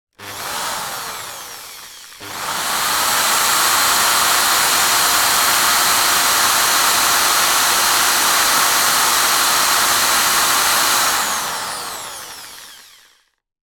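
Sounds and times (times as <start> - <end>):
industrial drill bursts free wheeling: 0.2 - 13.3.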